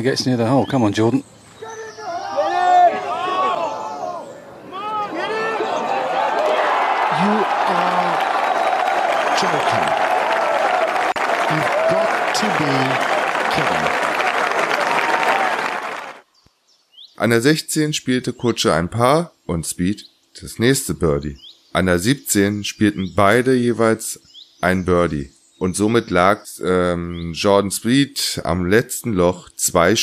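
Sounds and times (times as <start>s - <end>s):
speech: 0.0s - 1.4s, 17.2s - 30.0s
golf gallery cheering with whoops for an eagle: 1.6s - 16.2s
golf gallery excited shouts: 1.6s - 16.2s.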